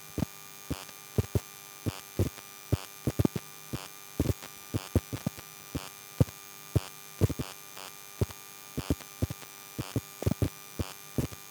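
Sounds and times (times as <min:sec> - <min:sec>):
electrical hum picked up by electromagnetic coil on satellite TV box: 0:00.0 - 0:11.4.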